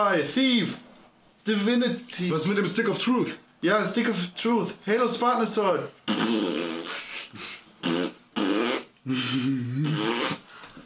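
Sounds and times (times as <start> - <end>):
speech: 0.0 - 6.4
voice imitating a sloppy wet fart: 6.0 - 7.0, 7.8 - 9.0, 9.7 - 10.5.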